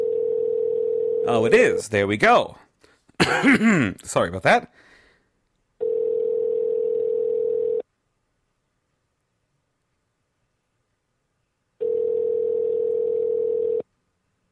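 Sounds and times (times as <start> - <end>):
telephone ringback tone on an outgoing call: 0.0 - 1.5, 5.8 - 7.8, 11.8 - 13.8
speech: 1.2 - 2.6, 3.2 - 4.9.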